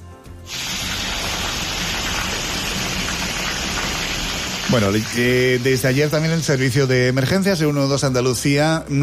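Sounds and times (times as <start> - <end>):
heavy hail falling: 0.5 - 6.7
speech: 4.7 - 9.0.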